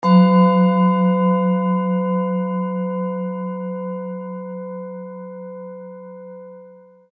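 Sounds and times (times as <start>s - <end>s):
Tibetan singing bowl: 0.0s - 7.1s.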